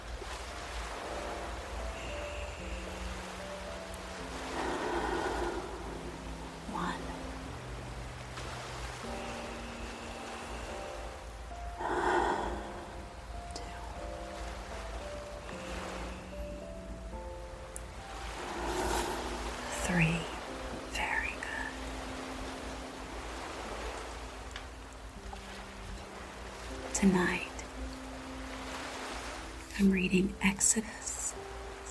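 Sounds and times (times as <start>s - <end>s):
soft sustained musical bed: 0.0s - 31.9s
slow deep breaths taken as a relaxation exercise: 1.9s - 6.4s, 9.0s - 13.1s, 18.0s - 19.8s
speech: 27.0s - 27.5s, 29.8s - 31.0s.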